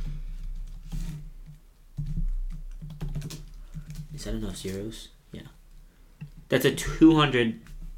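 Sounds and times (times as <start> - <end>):
typing on a computer keyboard: 2.0 - 4.4
speech: 4.2 - 5.2, 6.5 - 7.7.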